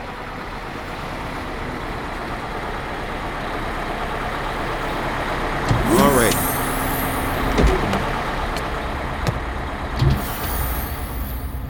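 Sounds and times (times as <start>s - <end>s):
bus brakes squealing: 0.0s - 11.6s
large bus engine rumbling pulling up to a bus stop: 0.0s - 11.6s
bus air brakes hissing: 5.7s - 8.6s, 10.0s - 11.6s.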